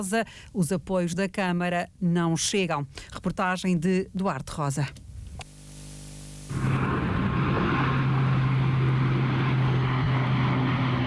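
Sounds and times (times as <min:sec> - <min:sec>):
speech: 0:00.0 - 0:05.1
propeller airplane droning overhead: 0:06.4 - 0:11.0.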